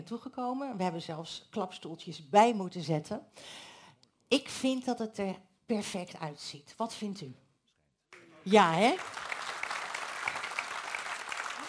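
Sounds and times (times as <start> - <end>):
speech: 0.0 - 3.7, 4.3 - 7.4, 8.4 - 9.2
audience applause at a packed local political evening: 8.8 - 11.6.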